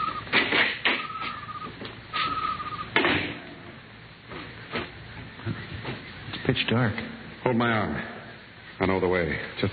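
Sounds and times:
small silo side door creaking open: 0:00.0 - 0:03.4
speech: 0:06.5 - 0:08.2, 0:08.8 - 0:09.7.

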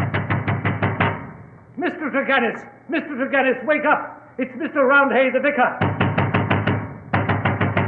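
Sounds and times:
loud knocking on a door: 0:00.0 - 0:01.3, 0:05.8 - 0:07.8
speech: 0:02.0 - 0:05.9.

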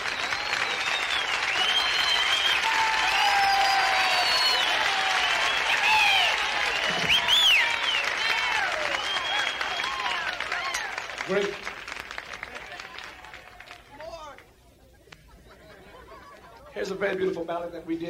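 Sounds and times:
audience whistles: 0:00.0 - 0:10.9
large audience applauding at a live show: 0:00.0 - 0:14.5
audience cheering voices: 0:00.0 - 0:16.7
laughter: 0:14.6 - 0:17.0
speech: 0:17.0 - 0:18.0.

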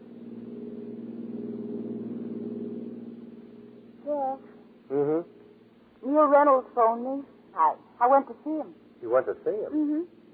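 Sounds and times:
car engine hum on a coastal skyline drive: 0:00.0 - 0:09.5
short voiced sound: 0:04.1 - 0:05.3, 0:06.0 - 0:10.0
speech: 0:06.2 - 0:10.2.

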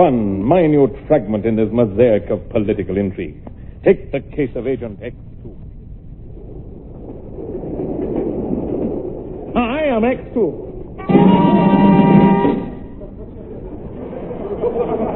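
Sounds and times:
speech: 0:00.0 - 0:05.3, 0:09.6 - 0:11.5
train to London clattering along the rails: 0:07.8 - 0:13.0
train horn blast: 0:11.0 - 0:13.0
train warbling whistle: 0:11.0 - 0:13.0
laughter: 0:12.8 - 0:15.1.

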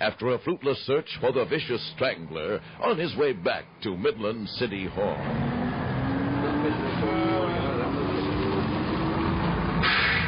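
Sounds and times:
speech: 0:00.0 - 0:05.6, 0:06.6 - 0:07.6
faint tonal whines: 0:00.9 - 0:09.8
bus engine running: 0:01.1 - 0:10.2
brief brighter burst of noise: 0:09.8 - 0:10.2.

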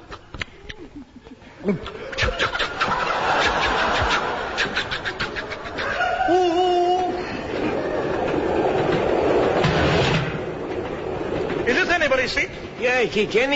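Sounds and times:
laughter: 0:00.6 - 0:09.6
speech: 0:01.0 - 0:02.0, 0:12.2 - 0:13.5
rhythmic clicking of train on rails: 0:01.8 - 0:13.5
train running on rails: 0:05.2 - 0:13.5.

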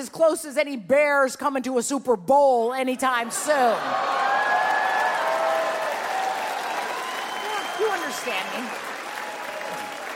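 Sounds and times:
speech: 0:00.0 - 0:04.3, 0:07.8 - 0:08.9
audience applause: 0:03.8 - 0:10.1.

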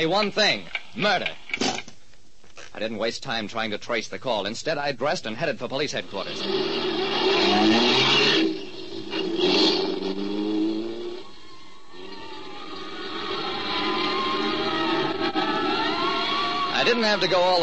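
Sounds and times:
speech: 0:00.0 - 0:01.8, 0:02.8 - 0:08.4, 0:17.0 - 0:17.6
car engine revving and accelerating hard through streets: 0:06.1 - 0:17.6.

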